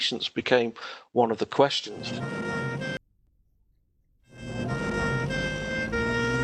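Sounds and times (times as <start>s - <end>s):
speech: 0.0s - 2.6s
ambulance siren wailing: 2.0s - 3.0s, 4.3s - 6.4s
rumbling traffic: 4.4s - 6.4s.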